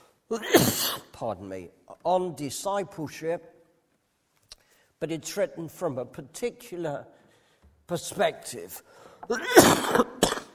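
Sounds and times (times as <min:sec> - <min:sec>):
speech: 0:00.3 - 0:03.5, 0:05.0 - 0:07.2, 0:07.9 - 0:10.2
harsh chesty coughs: 0:00.4 - 0:01.1, 0:09.2 - 0:10.5.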